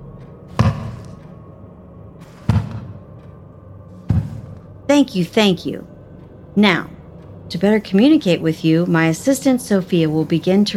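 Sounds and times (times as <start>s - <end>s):
dull knocks during a séance-style session: 0.6s - 1.2s, 2.5s - 3.0s, 4.1s - 4.6s
speech: 4.9s - 5.9s, 6.6s - 10.7s.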